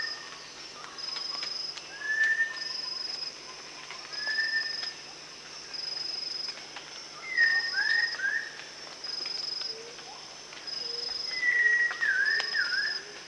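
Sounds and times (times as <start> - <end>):
Rufous-tailed shama song of whistled phrases at Danum: 1.9 - 2.9, 4.1 - 4.8, 7.2 - 8.6, 11.3 - 13.0.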